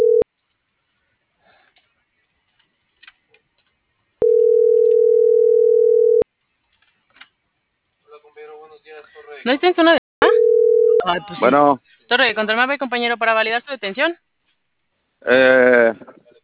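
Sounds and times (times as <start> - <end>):
ringback tone of an unanswered telephone call: 0.0 - 0.2, 4.2 - 6.2, 10.2 - 11.1
speech: 9.4 - 10.0, 11.1 - 14.3, 15.2 - 16.2.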